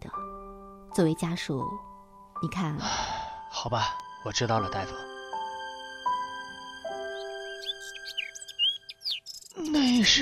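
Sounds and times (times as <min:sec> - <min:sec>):
speech: 0:01.0 - 0:05.1, 0:09.6 - 0:10.2
sparrow chirping: 0:06.5 - 0:10.2.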